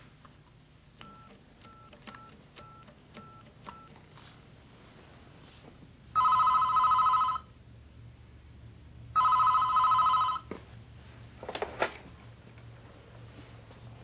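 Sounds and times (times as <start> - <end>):
telephone ringing with an electronic trill: 6.2 - 7.6, 9.2 - 10.5.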